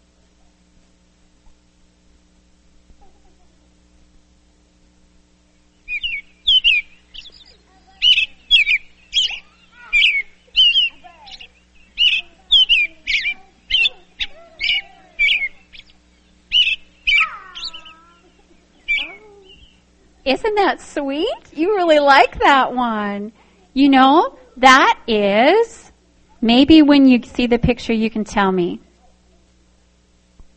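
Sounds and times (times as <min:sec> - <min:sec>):
robin singing in early morning: 0:05.7 - 0:23.0
speech: 0:20.3 - 0:25.7, 0:26.4 - 0:28.8.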